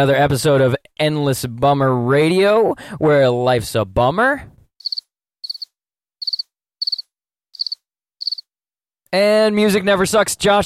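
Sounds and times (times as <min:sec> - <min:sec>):
speech: 0:00.0 - 0:04.5, 0:09.1 - 0:10.6
crickets chirping in trilled bursts: 0:04.8 - 0:07.0, 0:07.6 - 0:08.5.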